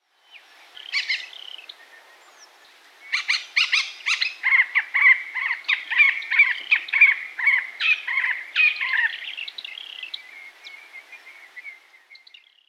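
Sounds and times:
Hall's babbler calling: 0:00.8 - 0:01.7, 0:03.1 - 0:10.8.

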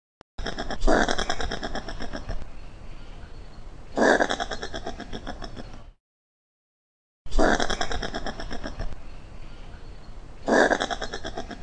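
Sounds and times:
opossum: 0:00.4 - 0:03.1, 0:03.9 - 0:06.0, 0:07.3 - 0:11.6.

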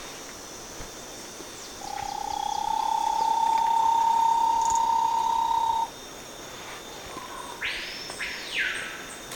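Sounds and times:
Bahia tapaculo low-pitched trill: 0:01.8 - 0:05.9.

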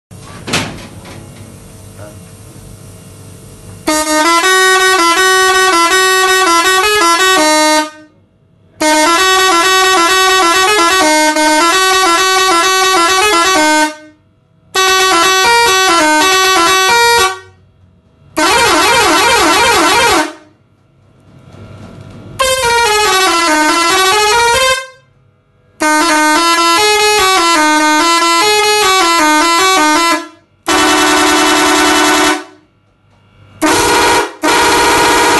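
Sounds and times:
Pakistani horn: 0:03.8 - 0:08.1, 0:08.8 - 0:17.6, 0:18.4 - 0:20.5, 0:22.4 - 0:25.0, 0:25.8 - 0:32.6, 0:33.6 - 0:35.3.

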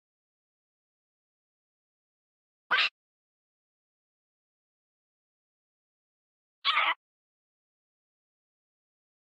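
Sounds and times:
parrot: 0:02.7 - 0:03.0, 0:06.7 - 0:07.0.

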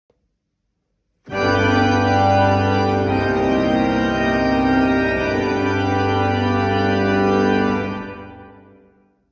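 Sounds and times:
organ: 0:01.3 - 0:09.0.

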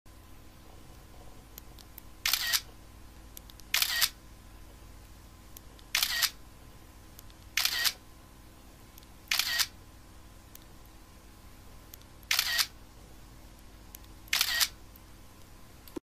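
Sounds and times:
smartphone camera shutter taking a photo: 0:02.2 - 0:02.7, 0:03.7 - 0:04.2, 0:05.9 - 0:06.4, 0:07.6 - 0:08.0, 0:09.3 - 0:09.7, 0:12.3 - 0:12.7, 0:14.3 - 0:14.8.

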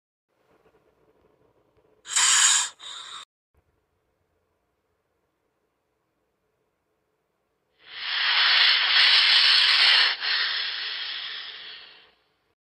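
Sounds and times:
anaconda hissing: 0:02.1 - 0:03.2, 0:07.8 - 0:12.2.

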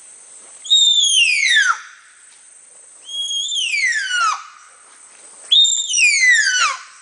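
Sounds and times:
Baird's tapir calling with piercing downward-sweeping whistles: 0:00.6 - 0:02.0, 0:03.0 - 0:04.6, 0:05.5 - 0:07.0.

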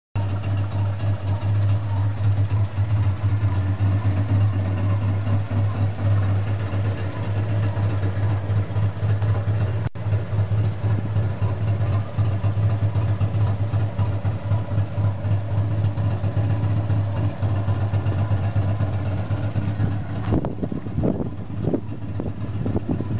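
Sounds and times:
Citroën Dyane car exhaust: 0:00.2 - 0:23.1.

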